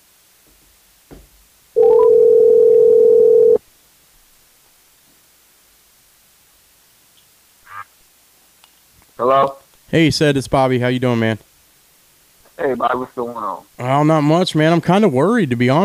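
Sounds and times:
faint noise: 0:00.0 - 0:15.8
telephone dial tone as a call is placed: 0:01.8 - 0:03.6
speech: 0:09.2 - 0:11.5, 0:12.6 - 0:15.8.

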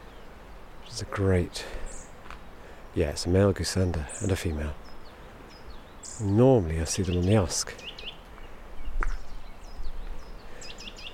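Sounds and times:
speech: 0:01.0 - 0:01.8, 0:02.9 - 0:04.8, 0:06.2 - 0:07.9
nuthatch singing clear repeated whistled notes: 0:04.0 - 0:11.1.

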